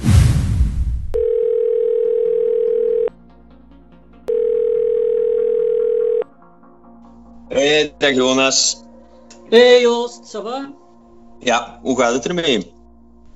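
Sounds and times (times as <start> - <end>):
burst of noise: 0.0 - 1.2
telephone dial tones while placing a call: 1.2 - 3.1, 4.3 - 6.2
speech: 7.7 - 8.8, 9.5 - 10.8, 11.4 - 12.7.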